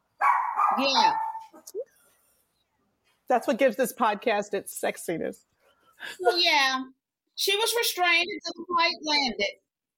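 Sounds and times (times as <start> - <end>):
dogs barking and yipping excitedly: 0.0 - 1.6
speech: 0.8 - 2.0, 3.3 - 9.9.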